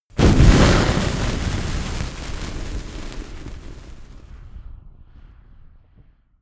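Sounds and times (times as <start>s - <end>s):
large campfire being extinguished: 0.1s - 4.3s.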